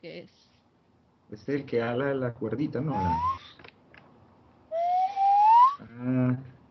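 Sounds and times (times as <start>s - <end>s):
speech: 0.0s - 0.5s, 1.3s - 3.6s, 6.0s - 6.5s
nose whistle being blown: 2.9s - 3.6s, 4.7s - 5.8s.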